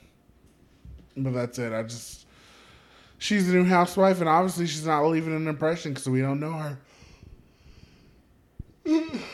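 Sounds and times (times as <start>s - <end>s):
speech: 1.2s - 2.3s, 3.2s - 7.0s
breathy yawn with a drawn-out voiced exhale: 8.8s - 9.3s.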